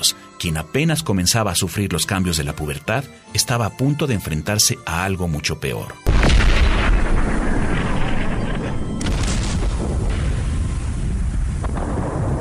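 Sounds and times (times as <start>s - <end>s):
speech: 0.0s - 6.5s
sharp blasts: 6.1s - 10.9s
heavy cannon and artillery fire: 6.1s - 12.3s.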